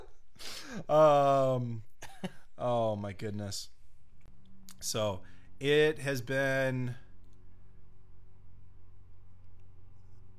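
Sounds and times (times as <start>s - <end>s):
speech: 0.8s - 3.8s, 4.8s - 7.0s
laughter: 2.0s - 2.4s
small engine droning: 4.3s - 10.3s.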